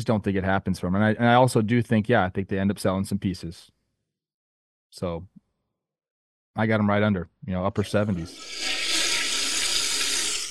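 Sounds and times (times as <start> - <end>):
speech: 0.0 - 3.8, 4.9 - 5.4, 6.6 - 8.7
toilet flushing: 7.8 - 10.4.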